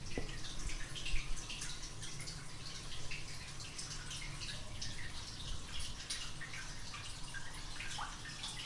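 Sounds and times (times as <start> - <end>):
water trickling inside a storm drain under a tree: 0.0 - 8.6.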